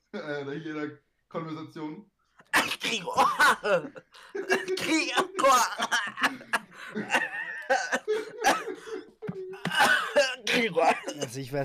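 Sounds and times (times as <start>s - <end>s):
speech: 0.1s - 11.6s
person coughing harshly: 2.5s - 11.4s
laughter: 3.1s - 11.3s.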